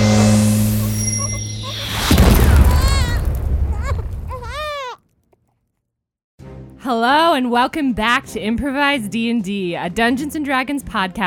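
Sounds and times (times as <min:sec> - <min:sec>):
energy blast sound effect from a child's tantrum: 0:00.0 - 0:04.5
warbling bleat-like squeals: 0:00.0 - 0:04.8
speech: 0:07.0 - 0:11.2.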